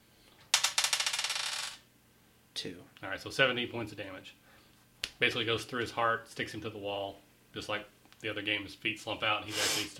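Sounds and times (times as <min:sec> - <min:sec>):
dice clattering during a tabletop role-playing game: 0:00.5 - 0:01.8
speech: 0:02.6 - 0:04.4, 0:05.2 - 0:09.9.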